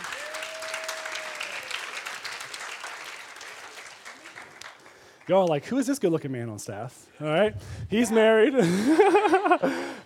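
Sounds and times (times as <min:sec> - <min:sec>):
crowd at a church gathering applauding: 0:00.0 - 0:05.6
speech: 0:05.3 - 0:10.0
laughter: 0:08.4 - 0:10.0.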